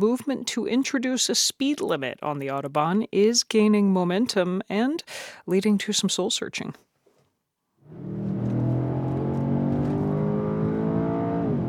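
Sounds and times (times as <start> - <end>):
speech: 0.0 - 6.9
Mercedes S-Class convertible 612-horsepower AMG engine droning on the Autobahn: 7.9 - 11.6.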